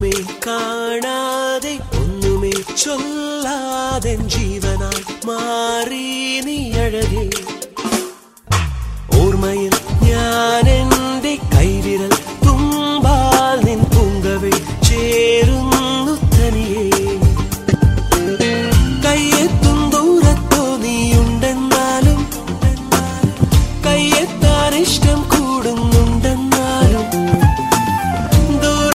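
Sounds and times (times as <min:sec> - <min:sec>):
Malayalam romantic ringtone music: 0:00.0 - 0:08.0, 0:09.1 - 0:28.9.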